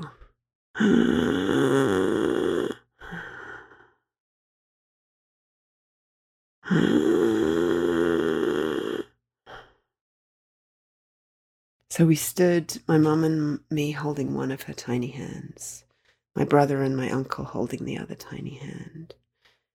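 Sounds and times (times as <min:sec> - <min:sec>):
voice imitating labored rattling breathing of a dying person: 0:00.0 - 0:04.0, 0:06.6 - 0:09.8
speech: 0:00.8 - 0:01.4, 0:12.0 - 0:19.2.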